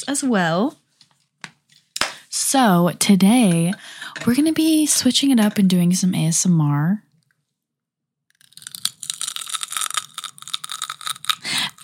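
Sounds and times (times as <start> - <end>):
speech: 0.0 - 0.8, 2.4 - 7.1
crunching of a celery and peanut butter snack: 8.3 - 11.8.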